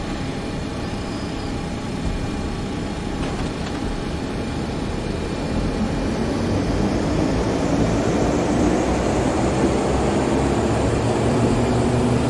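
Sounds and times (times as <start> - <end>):
taxiing plane engine roar in a flight simulator video game: 0.0 - 12.2.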